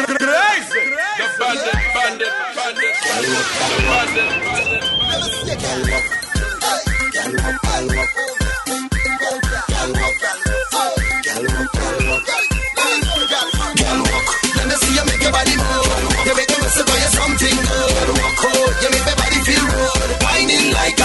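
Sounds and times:
dance track with pounding beat and layered synths: 0.0 - 21.0
high whistle-like melodic phrases in a dance track: 0.5 - 19.9.

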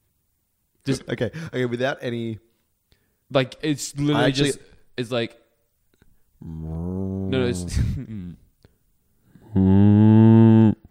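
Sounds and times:
speech: 0.8 - 2.5, 3.3 - 5.4, 6.4 - 8.2, 9.5 - 10.1
human voice imitating a cow mooing: 6.4 - 8.4, 9.4 - 10.9.

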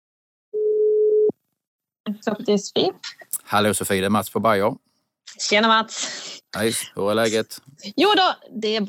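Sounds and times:
telephone ringing tone while placing a call: 0.6 - 1.3
speech: 2.1 - 8.8.

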